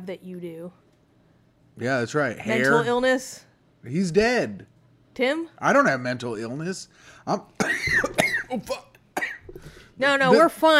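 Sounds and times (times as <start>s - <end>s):
speech: 0.0s - 0.9s, 1.8s - 8.9s, 9.5s - 10.7s
person coughing on a popcorn kernel stuck in the throat: 7.6s - 9.6s.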